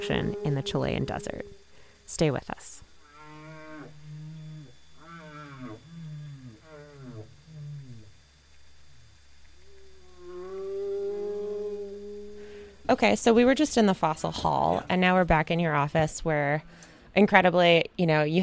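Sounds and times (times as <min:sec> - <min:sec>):
whale song with deep moaning calls: 0:00.0 - 0:02.0, 0:03.0 - 0:12.8
speech: 0:00.0 - 0:02.8, 0:12.9 - 0:18.4.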